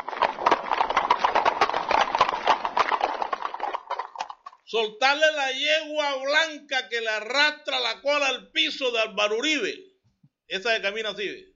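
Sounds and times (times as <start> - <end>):
horse hooves clip-clopping: 0.0 - 4.7
speech: 4.7 - 9.8, 10.5 - 11.5.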